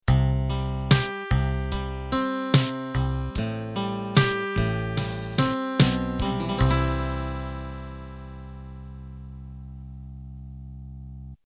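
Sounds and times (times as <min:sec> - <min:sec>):
8-bit standard ending jingle: 0:00.9 - 0:09.2.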